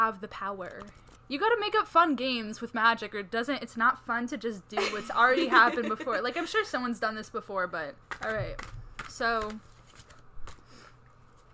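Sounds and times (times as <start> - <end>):
speech: 0.0 - 9.7
deck of playing cards being riffle shuffled: 0.4 - 1.3, 8.0 - 11.5
laughter: 4.8 - 6.6.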